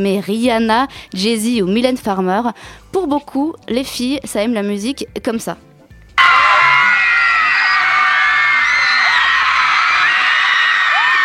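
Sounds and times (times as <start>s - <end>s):
speech: 0.0s - 6.4s
massive crowd of fans screaming hysterically at a concert: 6.2s - 11.2s.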